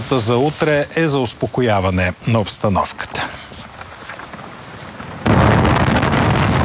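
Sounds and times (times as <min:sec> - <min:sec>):
speech: 0:00.0 - 0:03.3
strong wind roaring and buffeting the microphone: 0:03.6 - 0:06.6.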